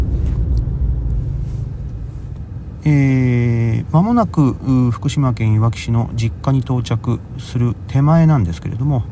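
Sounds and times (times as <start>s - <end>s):
strong tonal hum with clear harmonics: 0.0s - 6.4s
low road rumble from inside a moving car: 0.0s - 9.1s
speech: 2.8s - 9.1s.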